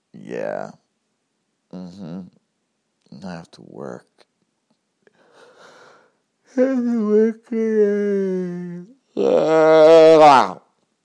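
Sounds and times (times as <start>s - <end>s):
speech: 0.3s - 0.8s, 1.7s - 2.4s, 3.1s - 4.2s, 6.5s - 10.6s
person yawning loudly: 5.6s - 10.6s.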